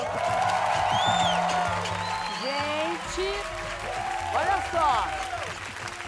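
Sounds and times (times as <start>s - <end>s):
high whoops and whistles: 0.0s - 2.8s
studio audience cheering and applauding: 0.0s - 6.0s.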